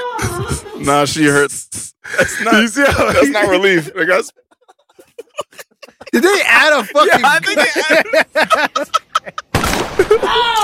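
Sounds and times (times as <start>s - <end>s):
laughter: 0.0s - 1.2s, 2.0s - 10.6s
speech: 0.4s - 4.5s, 5.4s - 9.4s, 10.1s - 10.6s
gunshot sound effect: 9.5s - 10.4s.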